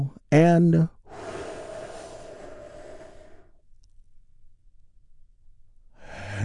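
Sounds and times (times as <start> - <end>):
deep slow breath during a guided relaxation exercise: 1.0 - 3.6, 6.0 - 6.4.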